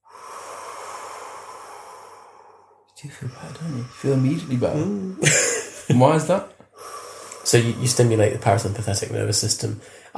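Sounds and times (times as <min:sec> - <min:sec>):
deep breath in and slow exhale: 0:00.0 - 0:05.2, 0:06.8 - 0:08.5
speech: 0:03.0 - 0:06.9, 0:07.5 - 0:10.1.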